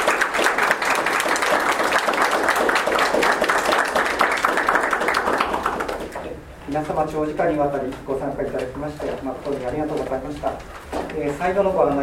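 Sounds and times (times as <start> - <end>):
sustained applause from a sizable audience for a lecturer: 0.0 - 6.3
speech: 6.8 - 12.0.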